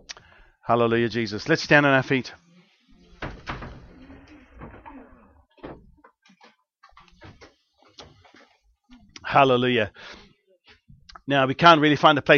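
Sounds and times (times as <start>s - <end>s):
speech: 0.7s - 2.4s, 9.3s - 10.2s, 11.3s - 12.3s
door pushed shut with a heavy thud: 3.2s - 6.0s
knocks: 3.2s - 6.5s.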